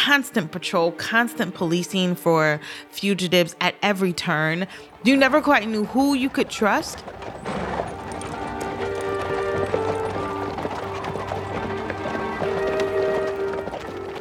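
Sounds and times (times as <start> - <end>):
speech: 0.0 - 7.8
horse hooves clip-clopping pulling a carriage: 4.6 - 14.2
low rumble of carriage wheels: 4.7 - 14.2.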